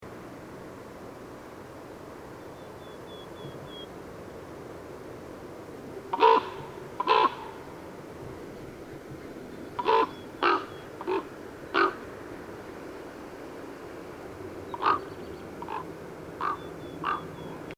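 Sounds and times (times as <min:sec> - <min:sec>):
common raven calling: 0:05.9 - 0:08.2, 0:09.2 - 0:12.3, 0:14.7 - 0:17.7.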